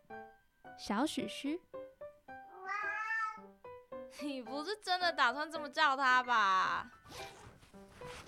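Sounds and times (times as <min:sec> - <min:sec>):
speech: 0:00.8 - 0:01.7, 0:04.2 - 0:07.4
kitten meowing in high thin cries: 0:02.6 - 0:03.5.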